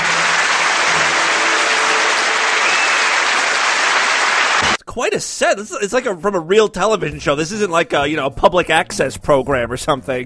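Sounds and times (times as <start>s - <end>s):
audience applause from a sizable crowd: 0.0s - 4.8s
speech: 5.0s - 10.2s.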